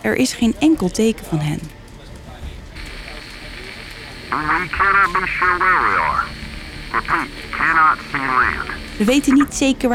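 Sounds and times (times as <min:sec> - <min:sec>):
speech: 0:00.0 - 0:01.8, 0:04.3 - 0:09.9
radio static hiss: 0:02.8 - 0:09.7.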